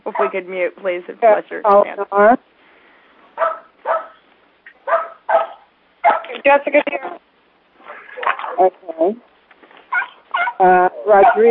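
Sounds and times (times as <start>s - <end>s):
speech: 0.1s - 2.5s, 6.4s - 7.2s, 8.2s - 9.3s, 10.6s - 11.4s
dog barking over a call line: 3.4s - 4.2s, 4.8s - 6.4s, 9.9s - 11.4s.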